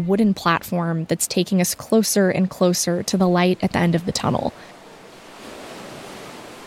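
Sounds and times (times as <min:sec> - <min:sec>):
speech: 0:00.0 - 0:04.8
waves crashing against boulders and rocks in a natural sea cave: 0:04.4 - 0:06.6.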